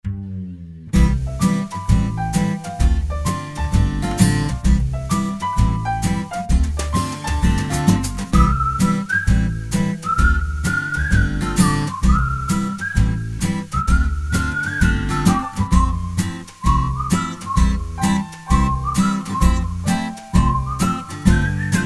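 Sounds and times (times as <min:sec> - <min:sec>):
footsteps strolling: 0:01.0 - 0:21.8
person whistling: 0:07.0 - 0:21.8.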